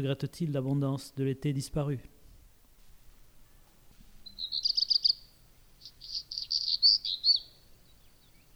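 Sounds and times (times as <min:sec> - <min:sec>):
speech: 0:00.0 - 0:02.2
black redstart song with whistled opening, rattling run and scratchy phrase: 0:04.2 - 0:08.5.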